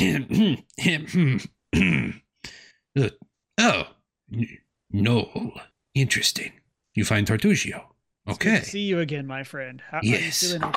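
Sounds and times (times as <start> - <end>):
voice acting out a man coughing and sputtering: 0.0 - 2.3
speech: 0.0 - 10.7.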